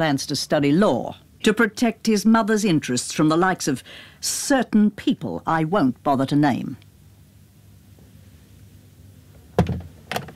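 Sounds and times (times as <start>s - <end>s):
speech: 0.0s - 6.9s
door being eased shut: 9.5s - 10.3s.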